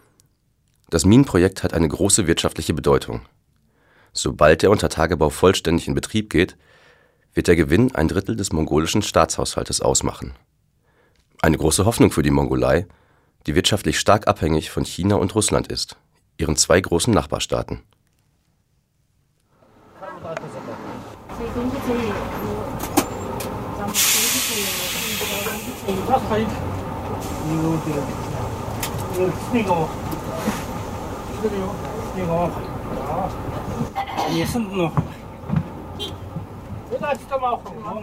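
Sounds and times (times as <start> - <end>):
speech: 0.9 - 3.4, 4.2 - 10.5, 11.4 - 18.0, 25.9 - 26.7, 27.5 - 28.2, 29.2 - 30.6, 31.4 - 33.6, 34.3 - 35.2, 36.9 - 38.0
old Soviet minibus engine drone and road rumble: 19.6 - 38.0
indistinct passenger voices murmuring: 20.0 - 35.5
hissing burst: 23.8 - 26.4, 27.0 - 31.4.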